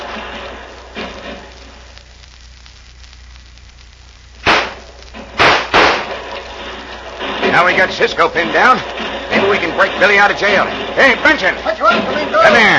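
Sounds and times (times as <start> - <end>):
steady hissing background: 0.0 - 12.7
gunshots in a Western shootout: 4.4 - 12.7
speech: 7.6 - 12.7.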